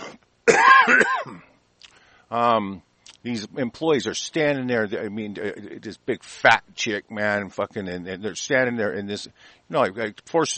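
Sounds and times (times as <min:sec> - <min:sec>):
rough throaty cough: 0:00.0 - 0:01.5
speech: 0:02.3 - 0:10.5.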